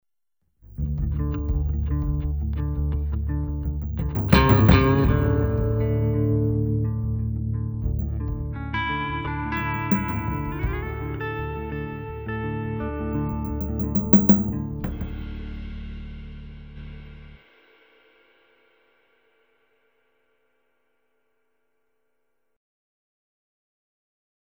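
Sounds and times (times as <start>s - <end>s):
bass: 0.6s - 17.5s
atmospheric muffled drums: 0.8s - 8.7s, 9.8s - 11.1s, 13.6s - 17.9s.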